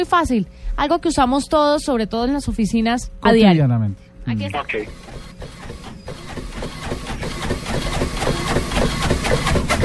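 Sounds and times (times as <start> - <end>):
speech: 0.0 - 5.2
office printer printing, mechanism clattering and whirring: 4.7 - 9.8.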